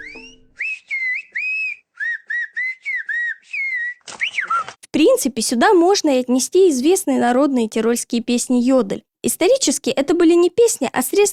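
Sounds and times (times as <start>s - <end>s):
whistled language syllables of the Canary Islands: 0.0s - 4.8s
speech: 4.9s - 11.3s.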